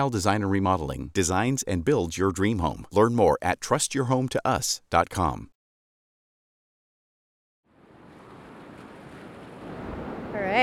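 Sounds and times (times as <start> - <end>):
speech: 0.0 - 5.5
ocean surf breaking at a pier: 7.7 - 10.6.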